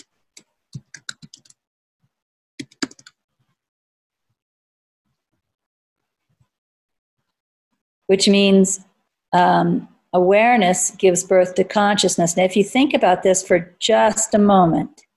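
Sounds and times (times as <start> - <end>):
typing on a computer keyboard: 0.0 - 1.6, 2.6 - 3.2
speech: 8.1 - 15.1.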